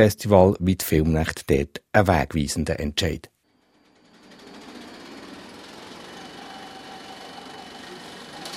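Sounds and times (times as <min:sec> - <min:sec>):
speech: 0:00.0 - 0:03.3
35mm film projector motor whirring in a castle courtyard in Münzigen: 0:03.5 - 0:08.5.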